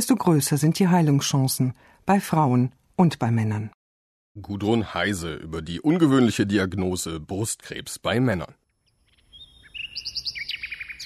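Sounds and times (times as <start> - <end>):
speech: 0.0 - 3.8, 4.4 - 8.6
nightingale singing: 8.8 - 11.0.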